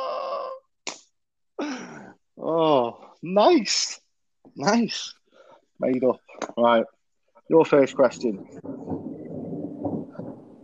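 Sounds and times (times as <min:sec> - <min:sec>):
speech: 0:02.4 - 0:04.0, 0:04.6 - 0:05.2, 0:05.8 - 0:08.8
thunder rumbling: 0:07.5 - 0:10.6.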